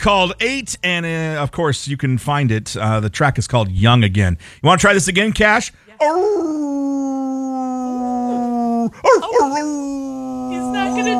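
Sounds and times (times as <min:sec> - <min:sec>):
speech: 0:00.0 - 0:07.7, 0:08.8 - 0:10.2
adoptable dog from a humane society howling in a studio: 0:06.0 - 0:11.1.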